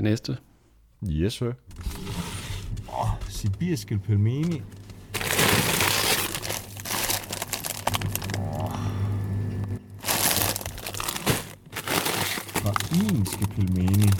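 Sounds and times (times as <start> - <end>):
speech: 0.0 - 2.0, 3.4 - 4.8, 12.9 - 14.1
steady low hum: 1.6 - 14.1
plastic frozen-food bags crinkling in the bottom of a chest freezer: 4.4 - 8.6, 10.0 - 14.1.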